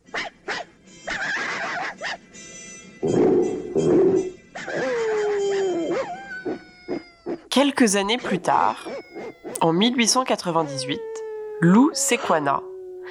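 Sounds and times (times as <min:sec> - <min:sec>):
dogs barking and yipping: 0:00.0 - 0:13.1
dog howling: 0:03.4 - 0:13.1
speech: 0:07.7 - 0:08.9, 0:09.6 - 0:12.7.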